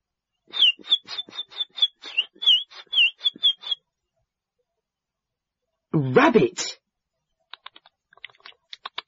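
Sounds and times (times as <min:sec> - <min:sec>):
budgie chirping: 0:00.6 - 0:03.8
speech: 0:06.1 - 0:06.6.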